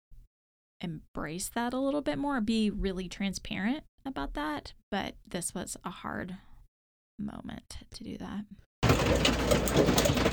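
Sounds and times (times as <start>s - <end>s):
speech: 0.8s - 6.5s, 7.2s - 10.3s
hail pounding the roof of a new Airstream travel trailer: 8.8s - 10.3s.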